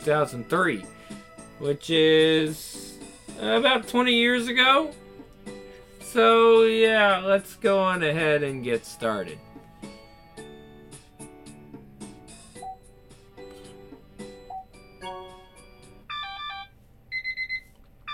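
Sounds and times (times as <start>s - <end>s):
speech: 0.0s - 2.8s, 3.4s - 5.0s, 6.1s - 9.5s
alarm clock electronic chiming melody: 14.2s - 17.5s.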